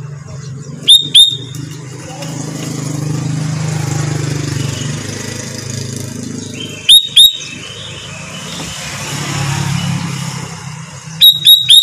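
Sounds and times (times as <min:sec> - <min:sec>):
low traffic noise: 0:00.0 - 0:11.8
sooty-headed bulbul whistling: 0:00.8 - 0:01.6, 0:06.4 - 0:08.7, 0:11.2 - 0:11.8.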